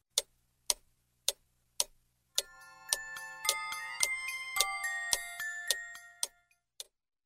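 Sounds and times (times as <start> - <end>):
large clock ticking: 0.0 - 7.0
large clock playing a tinkling chime melody: 2.4 - 6.6.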